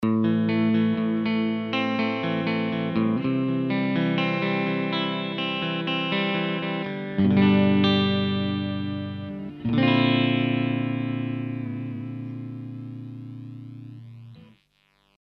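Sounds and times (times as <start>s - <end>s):
Strat electric guitar with tap tremolo and pan effect: 0.0s - 15.2s.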